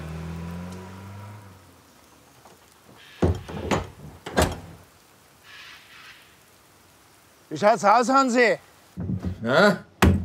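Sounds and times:
door with a safety catch on its hinge being shut with heavy thuds: 0:03.2 - 0:04.8, 0:09.0 - 0:10.2
speech: 0:07.5 - 0:08.7, 0:09.4 - 0:09.9.

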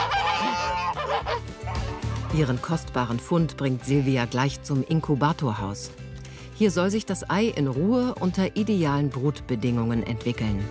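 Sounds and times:
flock of geese cackling and honking: 0:00.0 - 0:02.4
speech: 0:02.3 - 0:06.0, 0:06.6 - 0:10.7.

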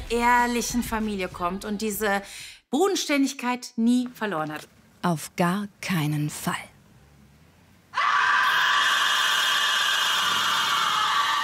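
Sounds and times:
speech: 0:00.1 - 0:06.7
woman screaming in TV crime drama: 0:08.0 - 0:11.4.

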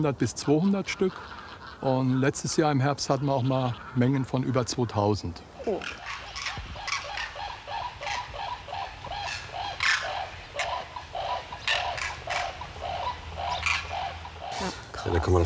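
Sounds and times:
speech: 0:00.0 - 0:06.2, 0:15.3 - 0:15.4
flock of common cranes bugling and trumpeting: 0:00.0 - 0:15.4.

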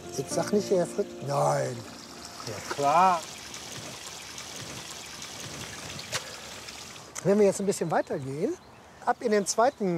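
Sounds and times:
small garden fountain water trickling and splashing: 0:00.0 - 0:07.8
speech: 0:00.2 - 0:03.3, 0:07.2 - 0:09.9.

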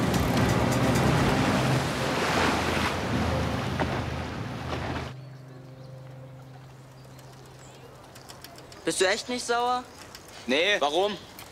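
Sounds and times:
waves splashing on open water: 0:00.0 - 0:05.2
boat engine droning on open water: 0:00.0 - 0:08.7
speech: 0:08.9 - 0:11.3.

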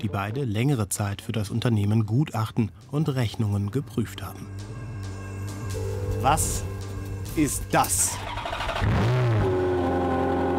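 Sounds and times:
speech: 0:00.0 - 0:04.8, 0:06.2 - 0:06.7, 0:07.4 - 0:09.2
limited-edition Ferrari Scuderia sports car engine revving: 0:08.2 - 0:10.5.

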